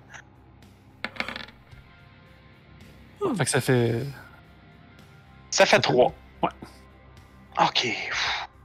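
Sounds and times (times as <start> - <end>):
three dice rolling on a hard tabletop: 1.0 - 1.7
speech: 3.2 - 4.2, 5.6 - 6.8, 7.6 - 8.3.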